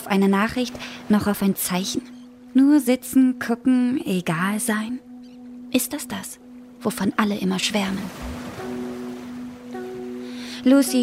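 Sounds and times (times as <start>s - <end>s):
speech: 0.0s - 5.1s, 5.7s - 8.4s, 10.6s - 11.0s
ocean surf washing in: 7.6s - 11.0s.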